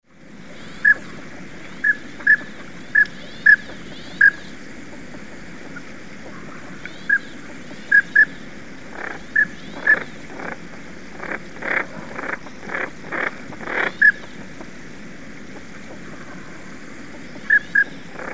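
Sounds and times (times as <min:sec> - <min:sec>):
white-headed duck calling: 0:01.8 - 0:04.5, 0:06.9 - 0:14.4.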